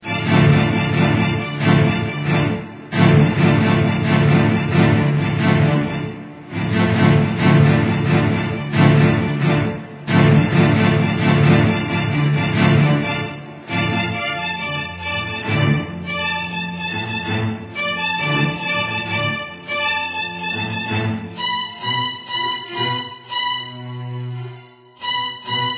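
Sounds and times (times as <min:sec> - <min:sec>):
dark strings in D minor: 0:00.0 - 0:25.7.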